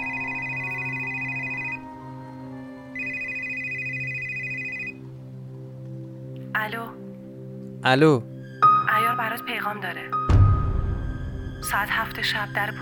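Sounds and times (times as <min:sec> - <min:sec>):
mobile phone ringing: 0:00.0 - 0:05.0
speech: 0:06.6 - 0:07.0, 0:07.8 - 0:08.3, 0:09.0 - 0:10.4, 0:11.6 - 0:12.7.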